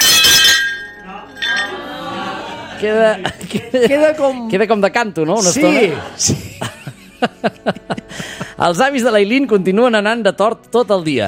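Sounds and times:
plate shattering: 0:00.0 - 0:01.8
glassy clink: 0:00.0 - 0:01.9
laughter: 0:01.4 - 0:04.5, 0:05.4 - 0:08.6
speech: 0:02.8 - 0:06.4, 0:07.2 - 0:08.0, 0:08.6 - 0:11.2.

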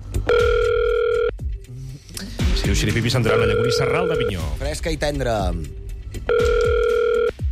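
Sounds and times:
telephone dialing tone: 0:00.3 - 0:01.3, 0:03.4 - 0:04.4, 0:06.3 - 0:07.3
speech: 0:02.6 - 0:06.8.

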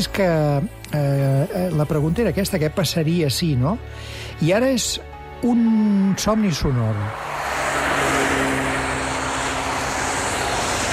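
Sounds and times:
speech: 0:00.0 - 0:07.4
low car engine drone: 0:05.8 - 0:10.9
car tyres hissing on a wet road in the rain: 0:07.0 - 0:10.9.

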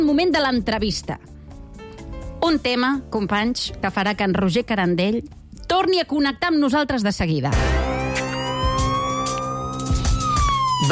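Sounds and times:
speech: 0:00.0 - 0:01.4, 0:02.4 - 0:07.9
police siren: 0:07.8 - 0:10.9.

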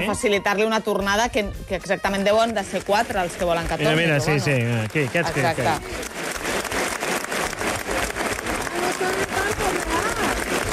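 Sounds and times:
speech: 0:00.0 - 0:06.1
audience applause from a sizable crowd: 0:02.4 - 0:10.7.

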